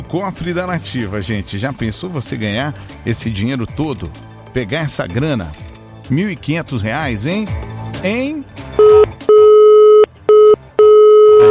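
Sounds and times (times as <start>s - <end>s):
speech: 0.1s - 9.1s
telephone busy signal on a failed call: 8.8s - 11.5s.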